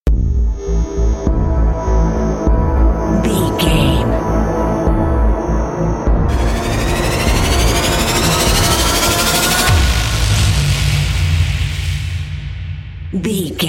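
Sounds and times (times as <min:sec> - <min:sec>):
pulsing fearful music bumper: 0:00.4 - 0:12.4.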